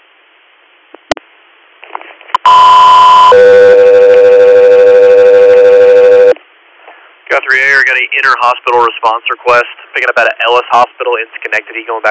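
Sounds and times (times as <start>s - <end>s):
faint radio static: 0.0s - 12.0s
loud two-tone radio dispatch alert to an aircraft crew: 2.4s - 6.4s
speech: 7.9s - 12.0s.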